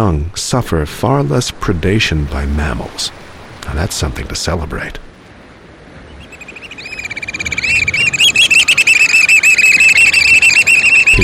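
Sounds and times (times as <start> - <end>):
speech: 0.0 - 5.1
black oystercatchers whistling calls: 6.1 - 11.2.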